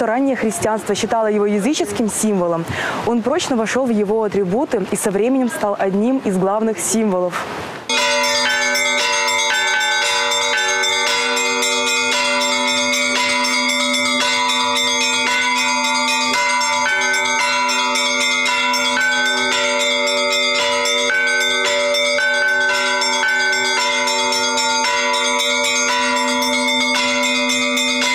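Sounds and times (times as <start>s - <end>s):
speech: 0.0s - 7.7s
several church bells pealing: 7.9s - 28.1s.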